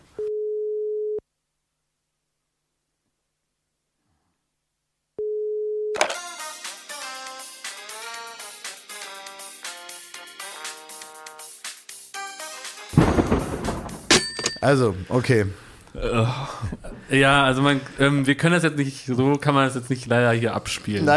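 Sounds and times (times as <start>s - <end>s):
telephone dial tone beeps: 0.2s - 1.2s, 5.2s - 6.0s
burst of noise: 13.0s - 14.0s
speech: 14.6s - 21.1s.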